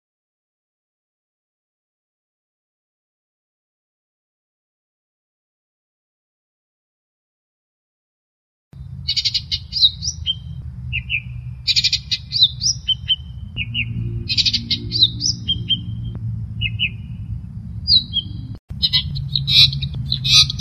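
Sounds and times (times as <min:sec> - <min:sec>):
low steady hum: 0:08.8 - 0:20.5
long-tailed shrike song: 0:09.0 - 0:20.5.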